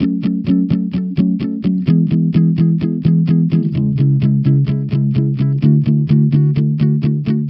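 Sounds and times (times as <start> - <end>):
electric pop guitar in F sharp minor: 0.0 - 7.4.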